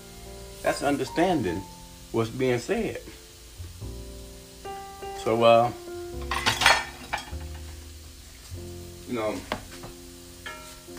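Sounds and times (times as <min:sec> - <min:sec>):
food sizzling: 0:00.0 - 0:10.9
speech: 0:00.6 - 0:03.2, 0:05.2 - 0:06.3, 0:09.1 - 0:09.6
pots and utensils clattering while cooking: 0:06.2 - 0:07.8, 0:10.4 - 0:10.9.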